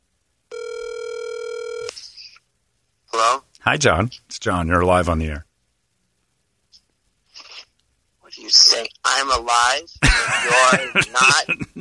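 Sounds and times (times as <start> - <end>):
telephone line ringing as a call is placed: 0.5 - 1.9
speech: 3.3 - 5.5, 8.5 - 11.7
laughter: 10.0 - 11.7.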